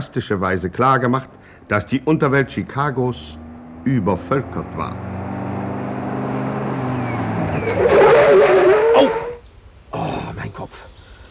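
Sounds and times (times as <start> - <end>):
speech: 0.0 - 5.2, 7.6 - 8.0
car engine hum on an access road: 0.3 - 9.4
car braking suddenly and skidding on an access road: 2.8 - 9.5.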